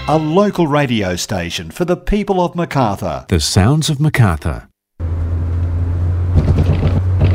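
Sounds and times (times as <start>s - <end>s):
speech: 0.1s - 4.7s
road hum: 4.3s - 7.3s
car engine rumble while driving along a road at night: 5.0s - 7.3s
bumps and rattling thuds: 6.3s - 7.3s.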